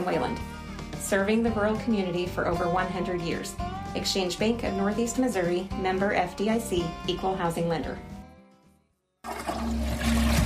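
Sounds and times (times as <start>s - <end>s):
speech: 0.0s - 8.1s
toilet flushing: 9.3s - 10.4s.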